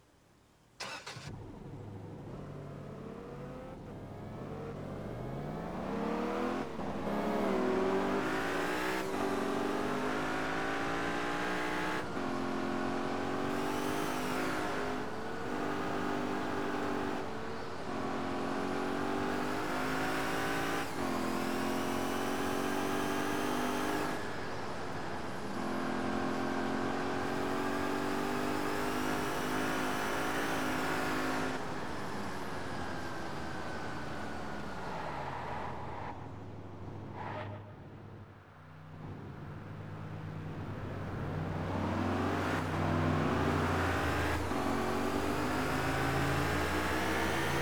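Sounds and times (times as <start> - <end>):
Mercedes-Benz SLK 55 AMG car: 0.0 - 47.5.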